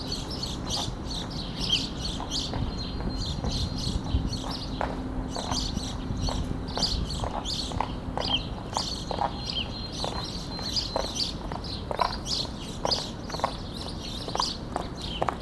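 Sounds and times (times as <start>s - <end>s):
house sparrows Passer domesticus chirping: 0.0s - 15.4s
clip-clop of hooves or footsteps: 2.1s - 15.4s.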